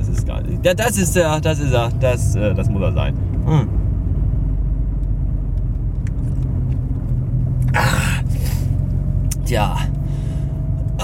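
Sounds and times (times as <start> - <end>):
car engine humming while driving and shifting into third gear: 0.0 - 11.0
speech: 0.6 - 3.8, 9.5 - 9.9.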